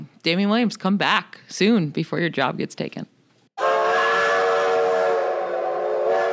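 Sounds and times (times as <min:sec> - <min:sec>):
speech: 0:00.2 - 0:03.1
loud sustained train whistle with steam hiss: 0:03.6 - 0:06.3.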